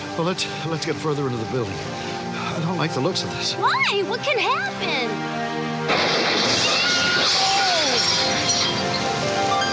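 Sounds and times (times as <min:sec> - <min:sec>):
speech: 0:00.2 - 0:06.3, 0:07.3 - 0:09.5
glass shattering: 0:05.9 - 0:09.2.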